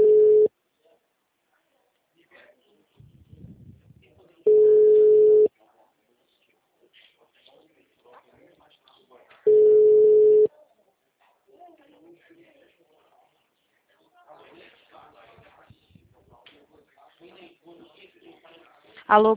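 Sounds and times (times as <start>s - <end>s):
telephone call tones on an unanswered number: 0.0s - 0.5s, 4.5s - 5.5s, 9.5s - 10.5s.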